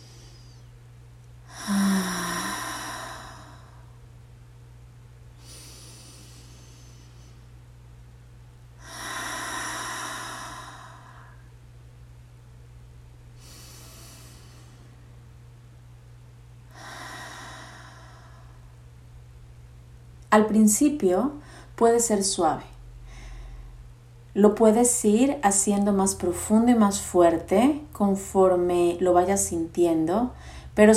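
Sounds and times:
slow breathing in through the nose and out through the mouth: 0.0s - 0.7s, 1.4s - 4.0s, 5.4s - 7.6s, 8.8s - 11.5s, 13.4s - 15.2s, 16.7s - 18.8s, 23.0s - 23.9s, 30.4s - 30.8s
constant low hum: 0.0s - 30.9s
speech: 20.3s - 22.7s, 24.4s - 30.9s.

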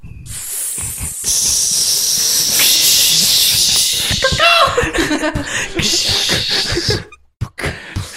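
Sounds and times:
loud sustained snake-like hissing: 0.2s - 4.4s, 5.8s - 7.0s
brief chuckling: 4.2s - 7.2s.

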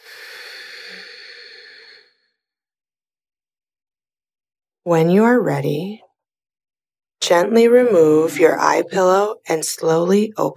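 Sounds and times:
long slow breath through the nose during a guided relaxation: 0.0s - 2.3s
speech: 4.8s - 6.0s, 7.3s - 10.5s.

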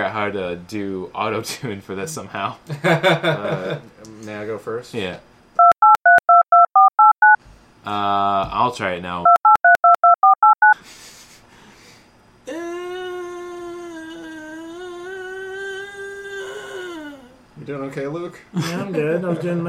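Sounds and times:
speech: 0.2s - 5.3s, 7.9s - 9.4s, 17.6s - 19.6s
dial-up modem dialing tones: 5.6s - 7.4s, 9.3s - 10.8s.

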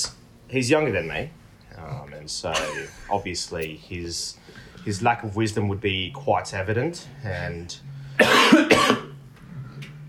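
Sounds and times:
speech: 0.5s - 9.0s
person coughing: 8.2s - 9.2s.

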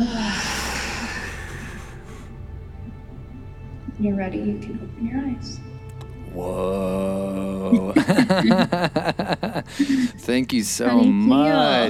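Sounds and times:
long audible breath during a guided breathing exercise: 0.0s - 2.4s, 9.7s - 10.2s
speech: 4.0s - 5.7s, 6.3s - 11.8s
laughter: 6.4s - 10.3s.

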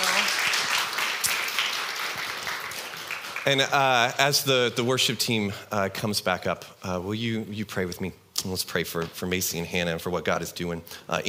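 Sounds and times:
crowd applauding: 0.0s - 4.0s
speech: 3.4s - 11.2s.

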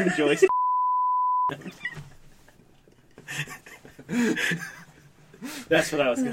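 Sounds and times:
laughter: 0.0s - 0.5s, 1.5s - 5.7s
speech: 0.0s - 0.8s, 1.5s - 2.1s, 3.3s - 4.8s, 5.4s - 6.3s
censorship bleep flat tone: 0.5s - 1.5s.

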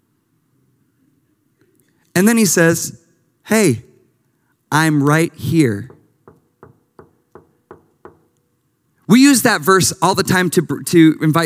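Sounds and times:
speech: 2.2s - 3.9s, 4.7s - 5.9s, 9.1s - 11.4s
knocks on a door: 5.9s - 8.3s.

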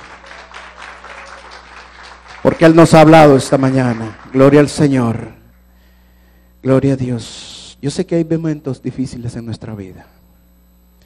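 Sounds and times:
audience applauding loudly: 0.0s - 4.8s
low steady hum: 0.0s - 11.0s
speech: 2.4s - 5.4s, 6.6s - 10.2s.

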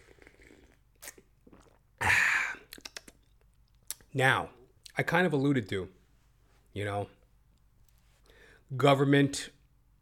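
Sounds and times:
person sipping coffee: 0.0s - 1.8s
small wet mouth clicks and swallowing: 0.0s - 1.9s, 2.7s - 4.1s
speech: 4.2s - 6.0s, 6.8s - 7.2s, 8.7s - 9.6s.

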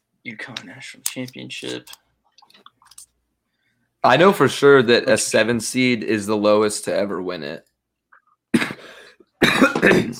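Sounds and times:
speech: 0.2s - 2.7s, 4.0s - 7.7s, 9.8s - 10.1s
person coughing: 8.6s - 10.1s.

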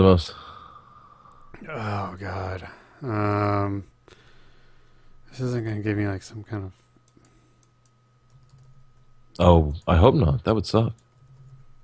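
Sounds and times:
speech: 0.0s - 0.4s, 1.6s - 3.9s, 5.4s - 6.8s, 9.4s - 11.0s
steady low electrical hum: 0.0s - 11.8s
typing on a computer keyboard: 7.1s - 8.8s, 10.9s - 11.6s.

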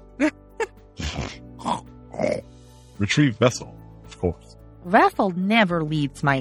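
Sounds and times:
speech: 0.2s - 0.4s, 3.0s - 6.4s
voice imitating rough breathy animal snorts: 1.0s - 2.4s.

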